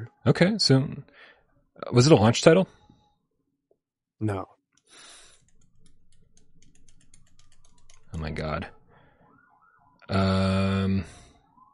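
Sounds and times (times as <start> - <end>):
speech: 0.2 - 1.1, 1.8 - 2.8, 4.2 - 5.1, 8.2 - 8.8, 10.1 - 11.2
emergency vehicle siren: 8.0 - 11.7.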